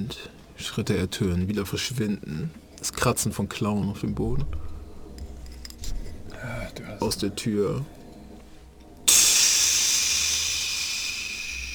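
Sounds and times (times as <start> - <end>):
speech: 0.0 - 4.7, 7.0 - 8.0
steam hissing out of a crack: 9.1 - 11.7.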